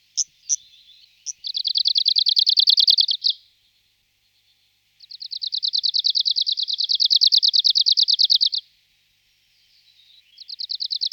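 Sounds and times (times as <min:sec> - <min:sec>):
Arctic warbler Phylloscopus borealis singing a rapid trill: 0:00.0 - 0:03.4, 0:05.0 - 0:08.6.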